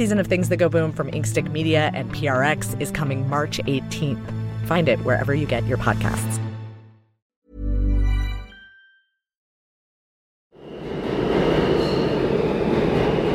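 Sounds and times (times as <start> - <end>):
speech: 0.0 - 6.4
New York City subway train rumbling past: 10.6 - 13.3.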